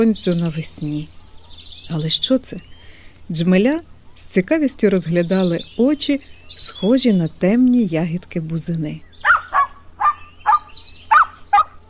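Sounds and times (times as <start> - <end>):
speech: 0.0 - 1.2, 1.9 - 2.7, 3.3 - 9.1
faint bird chirps: 0.0 - 11.8
small poodle yapping: 9.2 - 11.8.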